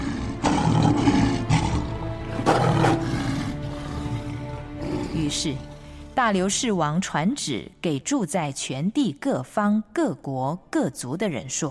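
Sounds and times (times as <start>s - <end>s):
lions in a pit roaring: 0.0s - 5.4s
constant low growl of lions: 0.0s - 5.9s
speech: 5.3s - 11.6s.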